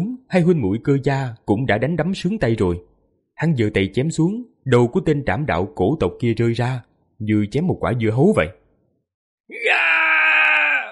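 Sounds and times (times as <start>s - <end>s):
speech: 0.3s - 8.6s
loud anguished scream of a furious spirit: 9.5s - 10.9s.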